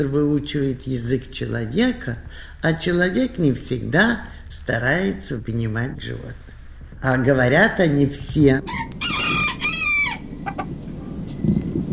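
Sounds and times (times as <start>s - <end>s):
speech: 0.0s - 9.1s
low rumble of noise: 0.0s - 11.9s
rooster crowing in a small animal theatre: 8.6s - 10.7s.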